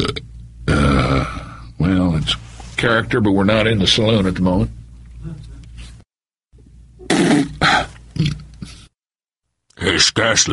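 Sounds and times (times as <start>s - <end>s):
loud gurgling belch: 0.0s - 1.4s, 7.0s - 8.6s
speech: 2.3s - 5.4s, 10.0s - 10.5s.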